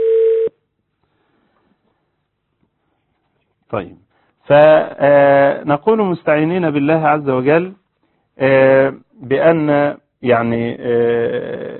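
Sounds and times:
incoming telephone call electronic tone: 0.0 - 0.5
speech: 3.7 - 7.8, 8.4 - 11.7.

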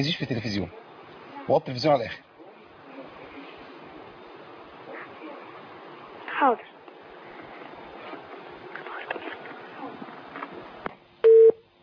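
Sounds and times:
speech: 0.0 - 0.9, 1.5 - 2.3, 6.4 - 6.7
low murmuring noise: 0.0 - 10.8
steady electronic telephone busy tone after a call is cut off: 11.3 - 11.6.

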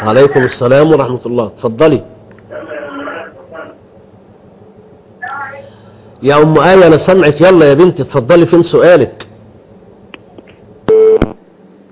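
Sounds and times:
speech: 0.0 - 2.1, 6.2 - 9.3
telephone busy tone after a dropped call: 10.9 - 11.3.

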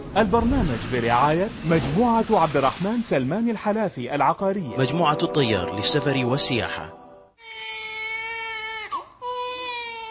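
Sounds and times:
speech: 0.1 - 7.0
newborn baby crying: 7.4 - 10.0.

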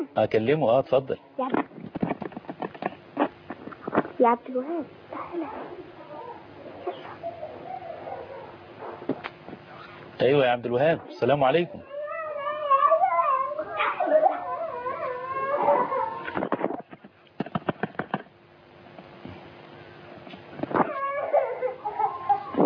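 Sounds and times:
speech: 0.1 - 1.7, 4.2 - 5.9, 10.2 - 11.9
sharp clicks and knocks: 1.5 - 4.1, 16.3 - 18.3
young child crying during a phone call: 5.1 - 8.0, 11.9 - 16.4, 20.9 - 22.6.

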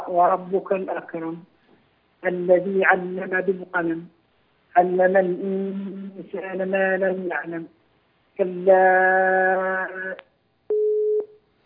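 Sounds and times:
speech: 0.1 - 1.6, 2.2 - 4.2, 4.8 - 7.8, 8.4 - 10.3
steady mid-pitched beep: 10.7 - 11.3
telephone busy tone after a caller's line disconnected: 10.7 - 11.3.

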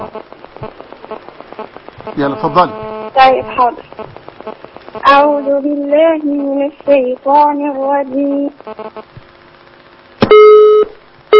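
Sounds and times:
speech: 0.1 - 1.3, 2.1 - 9.1
telephone busy tone after a dropped call: 10.3 - 11.3.

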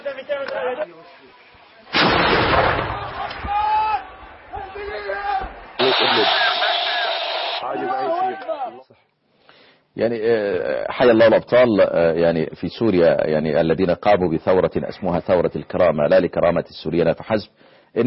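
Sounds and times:
improvised hell cannon blasts: 1.9 - 4.6, 5.4 - 7.6
men shouting: 2.9 - 8.8
speech: 10.0 - 18.0.

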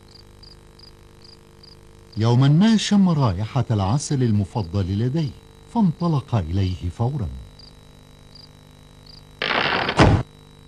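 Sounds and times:
speech: 2.2 - 7.5
door slamming shut with a heavy thud: 9.4 - 10.3.

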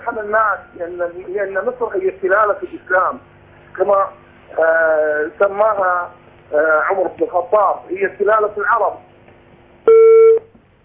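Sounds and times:
speech: 0.1 - 9.1
electronic beep of a phone call disconnecting: 9.9 - 10.5.

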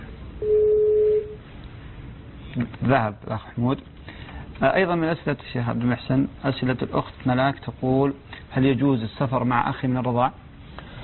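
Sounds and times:
faint hiss: 0.0 - 11.0
telephone call tone beep on a phone-in line: 0.4 - 1.4
speech: 2.6 - 10.4.

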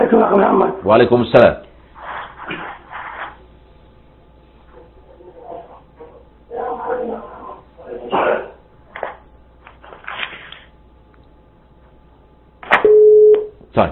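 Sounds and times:
speech: 0.0 - 1.7
electronic phone busy tone after dropped call: 12.8 - 13.5.

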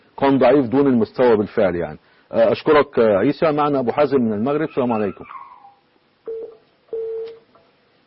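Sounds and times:
speech: 0.2 - 5.4
phone line electronic beeps after a call drops: 6.3 - 7.4.

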